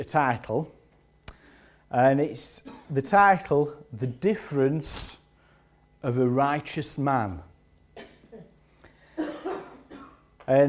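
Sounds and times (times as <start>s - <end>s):
speech: 0.0s - 0.8s, 1.9s - 5.2s, 6.0s - 8.1s, 10.5s - 10.6s
person coughing during an evening sermon: 2.6s - 3.0s, 8.0s - 10.3s.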